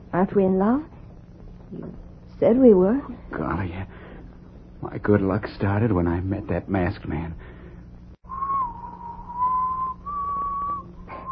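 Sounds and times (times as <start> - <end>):
low hum: 0.0 - 11.3
speech: 0.1 - 0.9, 1.7 - 4.0, 4.8 - 7.6
person whistling a wedding tune: 8.3 - 11.3.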